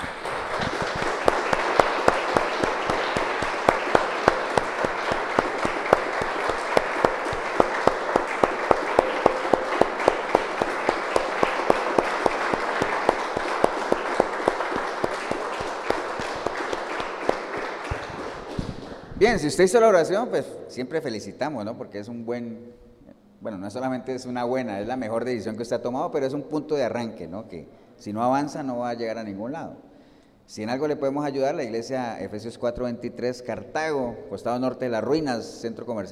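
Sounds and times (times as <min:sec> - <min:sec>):
crowd applauding: 0:00.0 - 0:19.6
sharp individual claps: 0:00.0 - 0:19.6
speech: 0:19.3 - 0:22.8, 0:23.4 - 0:29.9, 0:30.5 - 0:36.1.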